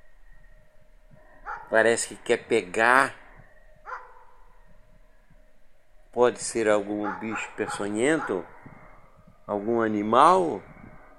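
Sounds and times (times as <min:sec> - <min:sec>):
dog barking: 0:01.4 - 0:01.8, 0:03.9 - 0:04.5, 0:06.9 - 0:08.7
speech: 0:01.7 - 0:03.2, 0:06.2 - 0:08.6, 0:09.5 - 0:10.7.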